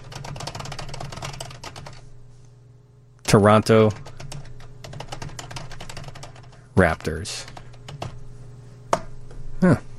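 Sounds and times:
rapid keystrokes on a computer keyboard: 0:00.0 - 0:02.0, 0:03.8 - 0:06.6, 0:07.5 - 0:08.2
low hum: 0:00.0 - 0:09.9
speech: 0:03.3 - 0:04.0, 0:06.8 - 0:07.5, 0:09.6 - 0:09.9.

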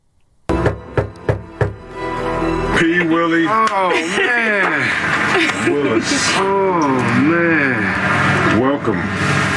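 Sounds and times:
firm knocks on a door: 0:00.5 - 0:01.8
speech: 0:02.8 - 0:09.4
laughter: 0:03.6 - 0:07.0.

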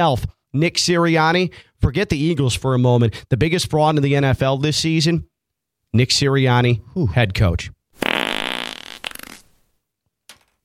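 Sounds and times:
speech: 0:00.0 - 0:05.3, 0:05.9 - 0:07.8
fart sound effect: 0:08.0 - 0:09.6.

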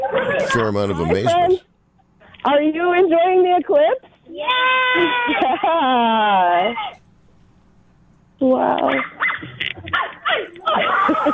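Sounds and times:
laughter: 0:00.0 - 0:01.2, 0:04.9 - 0:06.8, 0:10.6 - 0:11.3
speech: 0:00.4 - 0:01.7, 0:02.4 - 0:06.9, 0:08.4 - 0:09.9
dog barking: 0:08.9 - 0:10.9.

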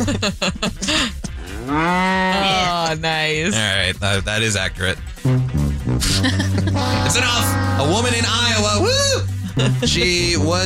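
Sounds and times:
laughter: 0:00.0 - 0:01.4, 0:06.0 - 0:07.5, 0:09.3 - 0:10.4
speech: 0:00.2 - 0:10.6
cow mooing: 0:01.4 - 0:02.7.

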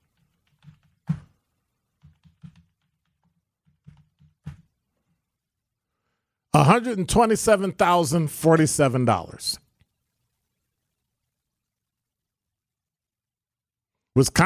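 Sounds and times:
typing on a computer keyboard: 0:00.0 - 0:01.3, 0:02.0 - 0:04.7
speech: 0:06.6 - 0:09.6, 0:14.2 - 0:14.4.

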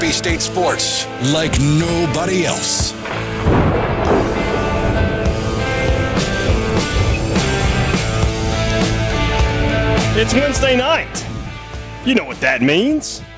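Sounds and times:
speech: 0:00.0 - 0:04.5, 0:10.2 - 0:11.3, 0:12.0 - 0:13.3
dense driving musical bed in a radio show intro: 0:00.0 - 0:13.3
thunder sound effect rumbling and booming: 0:03.0 - 0:11.6
sharp hits: 0:03.0 - 0:11.7.

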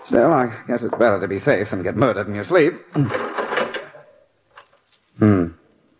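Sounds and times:
speech: 0:00.1 - 0:03.4, 0:05.2 - 0:05.6
wooden house door creaking: 0:02.0 - 0:04.8
person rattling the lock of a locked wooden house door: 0:03.1 - 0:04.7.

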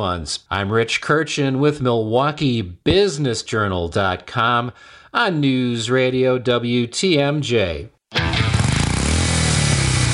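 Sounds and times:
speech: 0:00.0 - 0:08.3
Harley-Davidson motorcycle engine rumbling: 0:08.4 - 0:10.1.

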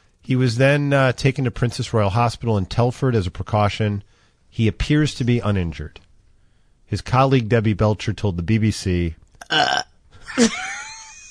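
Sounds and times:
speech: 0:00.3 - 0:06.0, 0:06.9 - 0:10.8
woman fake burping on command: 0:09.4 - 0:10.6.

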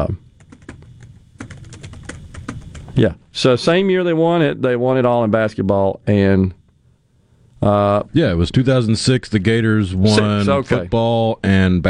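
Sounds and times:
fingers typing on a computer keyboard: 0:00.4 - 0:03.0
speech: 0:03.0 - 0:06.6, 0:07.6 - 0:11.8.

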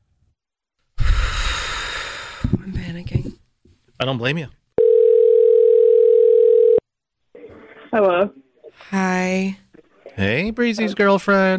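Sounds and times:
speech: 0:02.5 - 0:03.4, 0:04.0 - 0:04.6, 0:07.9 - 0:09.6, 0:10.2 - 0:11.5
phone ringback tone during an outgoing call: 0:04.8 - 0:06.8.

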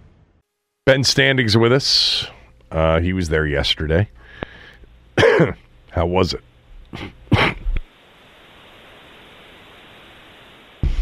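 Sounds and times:
steady hiss: 0:00.0 - 0:11.0
speech: 0:00.9 - 0:04.2, 0:05.4 - 0:07.2
loud harsh coughs: 0:05.2 - 0:05.6, 0:07.0 - 0:07.7.

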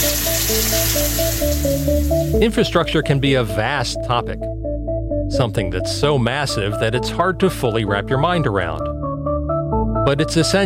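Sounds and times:
water running from a tap for washing: 0:00.0 - 0:02.4
speech: 0:00.5 - 0:04.7, 0:05.3 - 0:08.9, 0:10.0 - 0:10.6.

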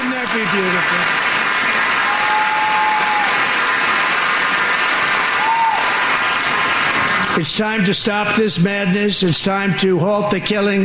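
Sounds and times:
large crowd applauding in a big hall: 0:00.0 - 0:07.8
speech: 0:00.4 - 0:01.2, 0:07.4 - 0:10.8.

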